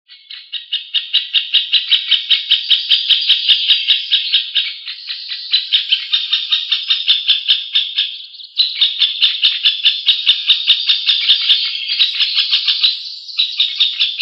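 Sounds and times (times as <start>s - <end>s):
middle spotted woodpecker calling during the rearing of young: 0.1s - 14.2s.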